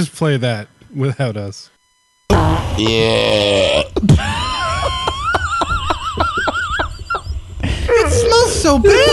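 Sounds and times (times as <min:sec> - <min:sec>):
speech: 0:00.0 - 0:01.7, 0:02.3 - 0:04.4, 0:08.6 - 0:09.1
long loud rasping burp: 0:02.3 - 0:04.1
laughter: 0:04.1 - 0:09.1.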